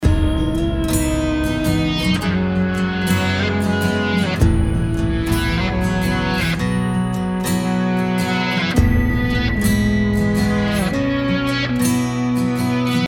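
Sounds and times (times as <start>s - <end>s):
reversed guitar: 0.0s - 13.0s.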